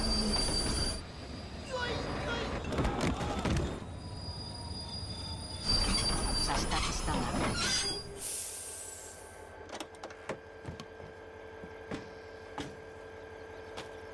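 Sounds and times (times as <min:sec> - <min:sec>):
train braking hard, wheels screeching against rails: 0:00.0 - 0:09.2
train rumbling as it slows: 0:00.0 - 0:14.1.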